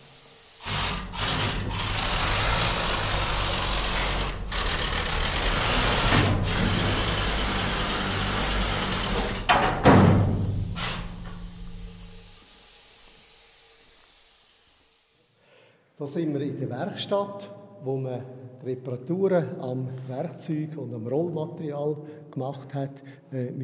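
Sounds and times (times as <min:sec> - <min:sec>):
mining shovel loader heavy electric motors running: 0:00.0 - 0:12.4
speech: 0:16.0 - 0:23.6.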